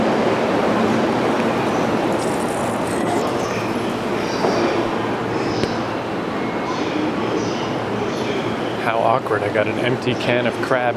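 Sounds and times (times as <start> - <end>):
train at a station roaring: 0.0 - 8.7
high metallic squeals of a train: 1.2 - 5.6
faint voices: 1.2 - 10.9
speech: 9.0 - 10.9.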